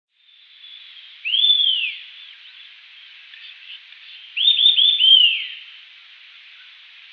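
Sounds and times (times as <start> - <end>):
Eastern sirystes Sirystes sibilator whistled call: 1.2 - 2.1, 4.4 - 5.6.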